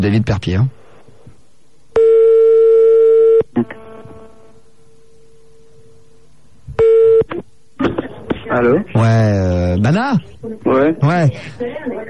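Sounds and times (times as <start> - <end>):
speech: 0.0 - 0.8, 8.6 - 12.0
long steady buzzy telephone line tone as a call is placed: 2.0 - 4.4, 6.8 - 7.3.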